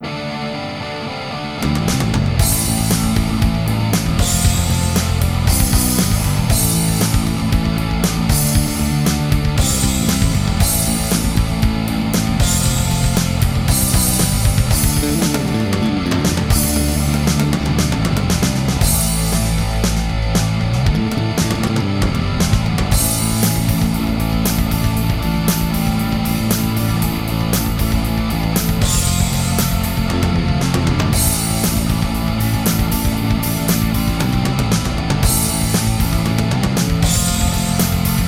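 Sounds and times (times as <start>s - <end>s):
karaoke singing: 0.0s - 38.2s.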